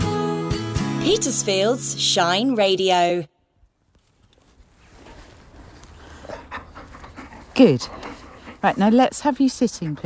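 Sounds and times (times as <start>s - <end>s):
speech: 1.0s - 3.3s, 7.6s - 8.0s, 8.6s - 10.0s
canine partner dog panting at Chapel Common: 5.0s - 10.0s.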